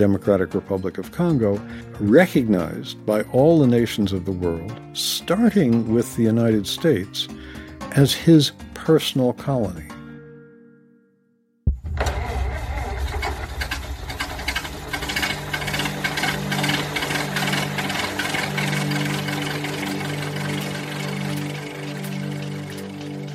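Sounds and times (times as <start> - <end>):
speech: 0.0 - 10.0
early automobile internal combustion engine sputtering to life and chugging: 11.8 - 23.3.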